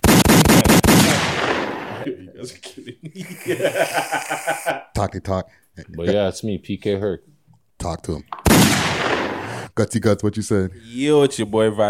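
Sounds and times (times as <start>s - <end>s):
gunshot sound effect burst: 0.0s - 2.1s, 8.4s - 9.7s
rumbling echo of gunshots: 0.5s - 2.0s
laughter: 1.9s - 5.0s
speech: 2.4s - 2.7s, 3.5s - 8.4s, 9.8s - 11.8s.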